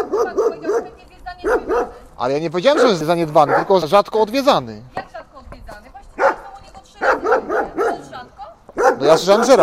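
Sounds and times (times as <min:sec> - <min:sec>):
dog barking: 0:00.0 - 0:02.0, 0:02.7 - 0:03.9, 0:06.2 - 0:09.6
speech: 0:02.2 - 0:05.0, 0:09.0 - 0:09.6.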